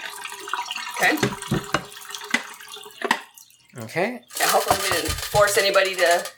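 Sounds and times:
water from a water stop dumped into a sink: 0.0 - 3.7
speech: 1.0 - 1.6, 3.8 - 6.3.

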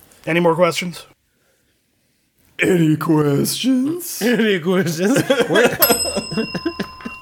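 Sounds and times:
speech: 0.2 - 1.1, 2.6 - 6.7
laughter: 4.2 - 7.1
small bell ringing rapidly: 5.8 - 7.1.

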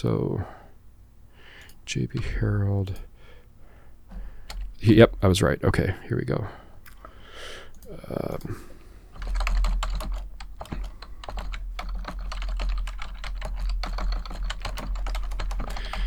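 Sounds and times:
speech: 0.0 - 0.6, 1.9 - 3.1, 4.8 - 6.6, 7.4 - 8.7
low steady hum: 0.0 - 16.0
loud typing on a computer keyboard: 4.5 - 4.8, 9.2 - 16.0.

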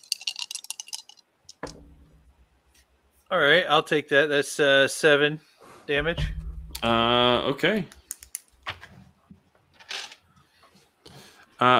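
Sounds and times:
dice rolled on a table during a game: 0.0 - 1.7
speech: 3.3 - 8.0, 11.6 - 11.7
dice landing with a duller knock: 6.0 - 7.0.

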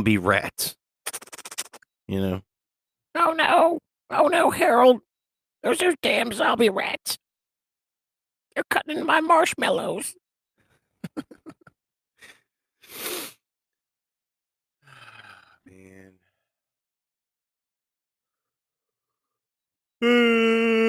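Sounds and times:
speech: 0.0 - 0.8, 2.1 - 2.5, 3.1 - 7.2, 8.6 - 10.2, 11.1 - 11.4, 20.0 - 20.8
person yawning: 14.8 - 16.0, 20.0 - 20.8.

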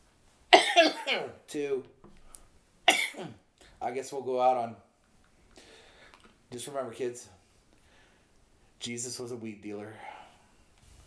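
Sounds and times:
person coughing: 0.6 - 1.3, 2.9 - 3.3
speech: 1.1 - 2.0, 3.2 - 4.8, 6.5 - 7.4, 8.8 - 10.2
faint rustle: 10.8 - 11.0.

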